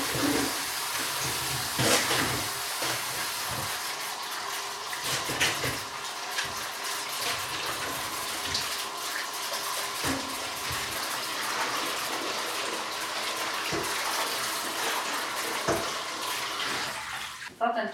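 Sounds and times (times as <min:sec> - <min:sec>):
warm tap water running: 0:00.0 - 0:17.5.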